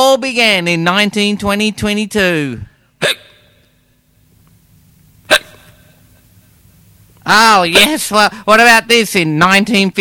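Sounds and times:
speech: 0:00.1 - 0:03.2, 0:07.3 - 0:09.9
man hiccuping during a record-long hiccup attack: 0:03.0 - 0:03.6, 0:05.2 - 0:06.0.

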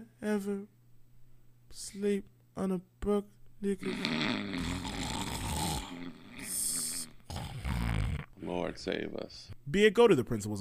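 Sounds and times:
speech: 0:00.2 - 0:00.8, 0:01.7 - 0:04.8, 0:08.4 - 0:10.5
dog snoring: 0:03.8 - 0:08.3.

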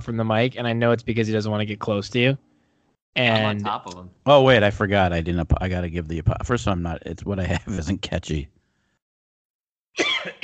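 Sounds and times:
speech: 0:00.0 - 0:02.5, 0:03.1 - 0:08.6
harsh rasping cough: 0:10.0 - 0:10.4.

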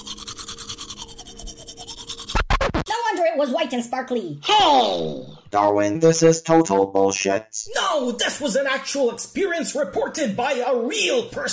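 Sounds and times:
toothbrush scrubbing teeth: 0:00.0 - 0:02.5
speech: 0:03.4 - 0:11.5.

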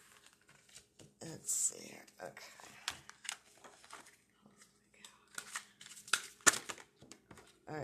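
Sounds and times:
deck of tarot cards being shuffled: 0:00.0 - 0:01.0, 0:02.8 - 0:04.2, 0:05.3 - 0:07.6
speech: 0:01.3 - 0:02.8.

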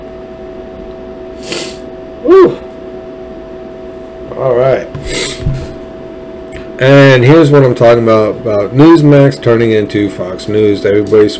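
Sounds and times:
person sneezing: 0:01.4 - 0:02.6, 0:05.0 - 0:05.7
speech: 0:06.8 - 0:11.3.

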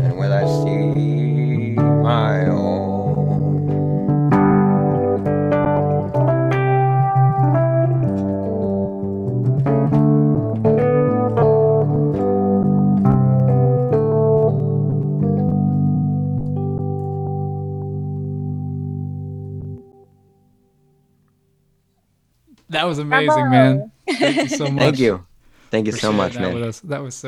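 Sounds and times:
Rhodes electric piano playing warm, mellow chords and melodic phrases: 0:00.0 - 0:21.0
speech: 0:22.9 - 0:27.2
laughter: 0:23.2 - 0:25.2, 0:25.9 - 0:26.8.

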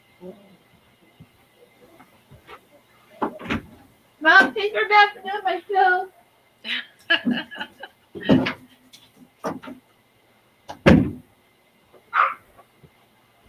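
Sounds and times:
speech: 0:00.2 - 0:00.6, 0:04.2 - 0:07.8
door banging open: 0:03.2 - 0:03.8, 0:10.7 - 0:11.2
knocks and bumps: 0:03.2 - 0:03.8, 0:08.2 - 0:08.7, 0:09.4 - 0:09.8, 0:10.7 - 0:11.3
laughter: 0:06.7 - 0:08.3.

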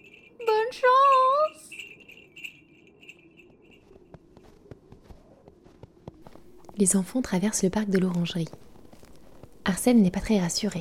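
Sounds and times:
tiny bells jingling on shaken caps: 0:00.0 - 0:04.5
speech: 0:00.4 - 0:01.1, 0:06.8 - 0:08.6, 0:09.7 - 0:10.7.

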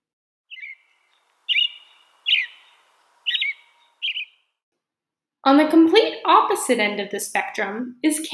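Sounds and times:
American robin singing: 0:00.5 - 0:04.6
speech: 0:05.5 - 0:08.3.

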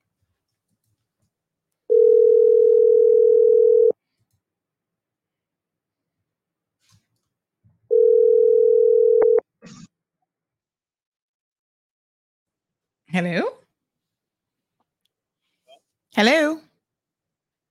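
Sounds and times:
telephone line tone during an outgoing call: 0:01.9 - 0:04.0, 0:07.9 - 0:09.4
speech: 0:13.2 - 0:13.6, 0:16.2 - 0:16.6.

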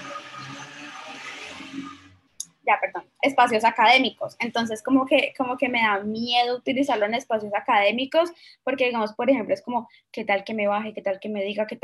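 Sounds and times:
vehicle passing with a low engine rumble on the street: 0:00.0 - 0:02.2
speech: 0:03.3 - 0:11.8.

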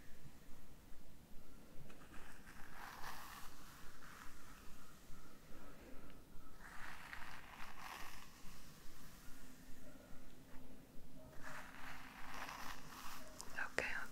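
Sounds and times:
faint hum: 0:00.0 - 0:14.1
hair being brushed: 0:01.9 - 0:05.6, 0:06.5 - 0:09.8, 0:11.3 - 0:14.1.

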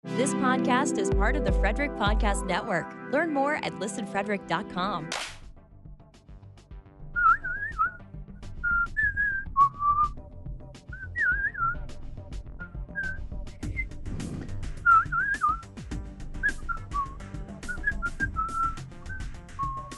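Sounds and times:
speech: 0:00.2 - 0:05.2
person whistling a western-movie theme melody: 0:07.2 - 0:08.0, 0:08.6 - 0:10.2, 0:10.9 - 0:11.9, 0:12.6 - 0:13.9, 0:14.8 - 0:15.7, 0:16.4 - 0:19.9.

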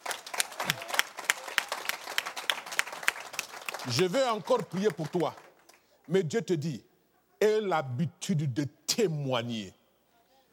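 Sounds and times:
church congregation applauding during a service: 0:00.0 - 0:06.2
speech: 0:03.8 - 0:05.4, 0:06.1 - 0:09.8.

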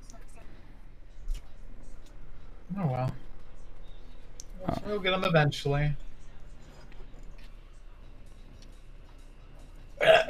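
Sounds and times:
quiet low murmur: 0:00.0 - 0:10.2
speech: 0:02.7 - 0:03.2, 0:04.6 - 0:06.0
person burping: 0:10.0 - 0:10.2.

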